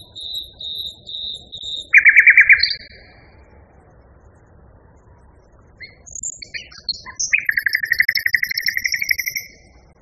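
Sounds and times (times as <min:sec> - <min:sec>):
common nightingale singing: 0:00.0 - 0:03.3, 0:05.7 - 0:09.9.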